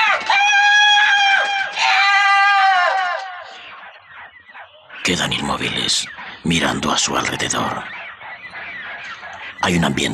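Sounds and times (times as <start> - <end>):
large black bird screeching: 0.0 - 10.1
speech: 5.1 - 8.0, 9.6 - 10.1.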